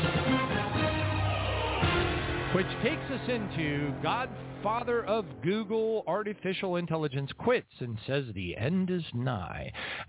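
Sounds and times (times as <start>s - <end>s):
news-style musical sting: 0.0s - 6.5s
speech: 2.6s - 10.0s.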